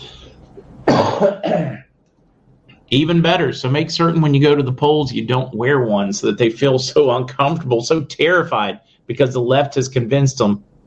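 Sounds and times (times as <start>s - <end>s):
harsh coughs: 0.8s - 1.9s
speech: 1.2s - 1.8s, 2.9s - 10.7s.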